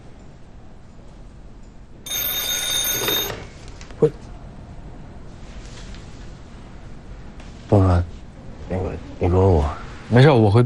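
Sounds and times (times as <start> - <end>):
telephone ringing in a bright buzzing burst: 2.1 - 3.6
speech: 4.0 - 4.3, 7.7 - 8.0, 10.2 - 10.6.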